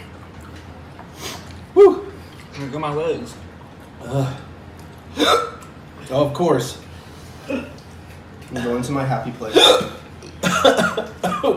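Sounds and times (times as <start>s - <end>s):
speech: 2.6s - 4.5s, 5.2s - 6.9s, 7.5s - 7.8s, 8.5s - 10.0s, 10.6s - 11.5s
loud hiccups: 5.1s - 5.7s, 7.4s - 7.8s, 9.5s - 11.5s.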